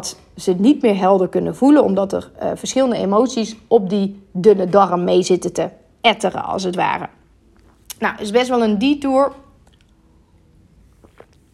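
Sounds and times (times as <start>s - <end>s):
speech: 0.0s - 7.2s, 8.0s - 9.4s
person sipping and swallowing water: 7.5s - 8.0s, 9.6s - 11.5s.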